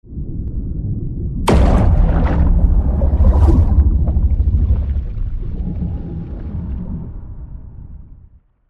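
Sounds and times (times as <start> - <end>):
naval underwater missile launch: 1.4 - 8.2.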